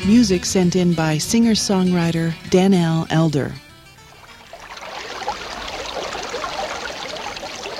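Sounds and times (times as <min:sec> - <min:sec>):
speech: 0:00.2 - 0:03.6
creek water babbling and trickling: 0:04.0 - 0:07.7.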